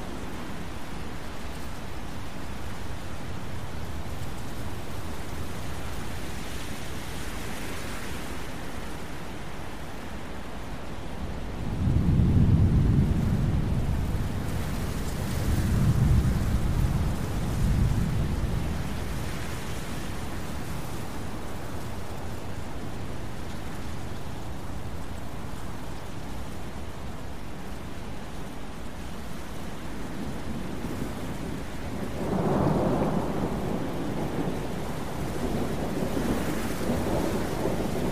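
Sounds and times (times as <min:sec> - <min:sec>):
dense steady rain in a thunderstorm: 0:00.0 - 0:38.0
wind in a thunderstorm: 0:00.0 - 0:38.0
low rolling thunder: 0:11.6 - 0:19.8, 0:30.2 - 0:38.0.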